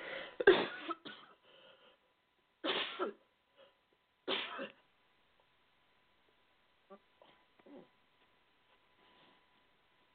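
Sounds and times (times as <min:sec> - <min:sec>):
faint throat sounds and breaths: 0:00.0 - 0:00.4, 0:01.4 - 0:02.1
person having a coughing fit with rough hacking coughs: 0:00.4 - 0:01.4, 0:04.3 - 0:04.8.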